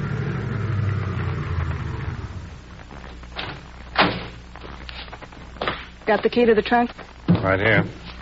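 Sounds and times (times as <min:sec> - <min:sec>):
car engine rumbling as the car pulls over and stops: 0:00.0 - 0:03.1
speech: 0:06.1 - 0:08.0.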